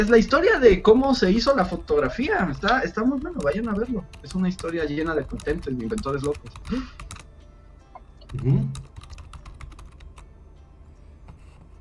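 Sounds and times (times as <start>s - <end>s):
typing on a computer keyboard while replying to a chat: 0.0s - 0.6s, 3.0s - 7.3s, 8.3s - 10.2s
speech: 0.0s - 7.2s, 8.3s - 8.9s.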